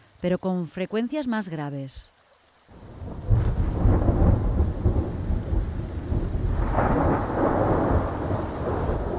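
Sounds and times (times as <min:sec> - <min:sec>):
steady rain: 0:00.0 - 0:09.1
speech: 0:00.2 - 0:03.4
deep rolling thunder: 0:02.7 - 0:09.1.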